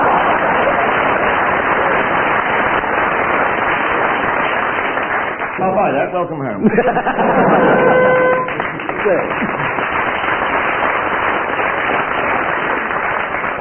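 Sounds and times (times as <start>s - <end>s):
laughter: 0.0s - 1.4s, 6.6s - 9.8s
crowd applauding: 0.0s - 6.2s, 6.9s - 13.6s
speech: 5.9s - 9.5s
brief tonal hoot: 7.5s - 8.6s.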